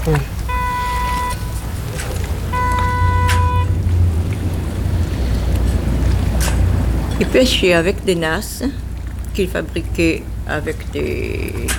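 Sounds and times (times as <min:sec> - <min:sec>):
speech: 0:00.0 - 0:00.4, 0:07.2 - 0:08.8, 0:09.4 - 0:11.7
wind roaring and buffeting the microphone outdoors near the sea: 0:00.0 - 0:11.7
thin high-pitched whine: 0:00.5 - 0:04.0.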